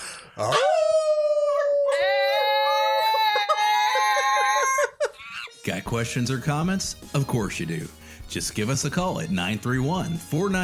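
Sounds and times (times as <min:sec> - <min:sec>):
speech: 0:00.4 - 0:00.7, 0:05.9 - 0:10.6
group of people howling in imitation of a wolf pack: 0:00.4 - 0:05.1.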